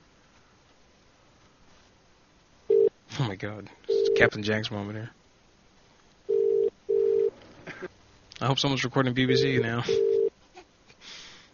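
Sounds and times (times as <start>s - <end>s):
faint telephone line hiss: 0.0s - 11.5s
speech: 3.2s - 5.2s, 8.4s - 10.1s
low-pitched telephone double ring tone on a transferred call: 6.3s - 7.3s, 9.9s - 10.3s.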